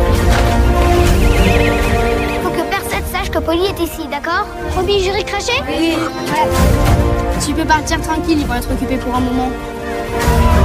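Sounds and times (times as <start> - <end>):
pony neighing: 0.1 - 3.0, 5.6 - 6.8
speech: 3.8 - 10.6.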